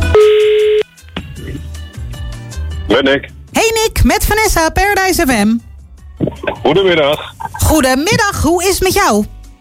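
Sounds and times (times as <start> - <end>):
telephone ringback tone as a call is placed from a radio studio: 0.1 - 0.9
speech: 3.0 - 9.3.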